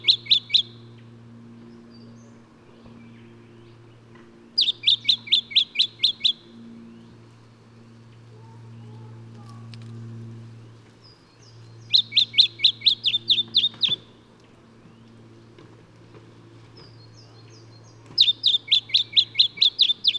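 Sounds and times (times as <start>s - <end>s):
low droning hum: 0.0s - 20.1s
lemon-bellied flyrobin Microeca flavigaster giving high slurred chip notes: 4.6s - 7.1s, 11.8s - 14.2s, 18.1s - 20.1s.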